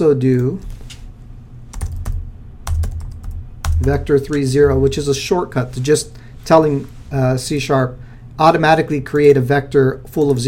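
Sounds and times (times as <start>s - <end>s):
speech: 0.0s - 0.7s, 3.8s - 10.4s
low steady hum: 0.0s - 10.4s
typing on a computer keyboard while entering code: 1.8s - 4.4s.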